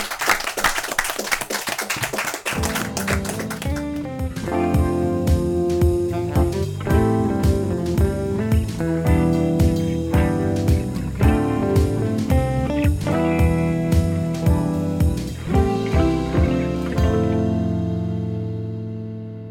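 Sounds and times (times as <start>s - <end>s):
small audience group clapping: 0.0s - 4.1s
upbeat instrumental music: 2.0s - 19.1s.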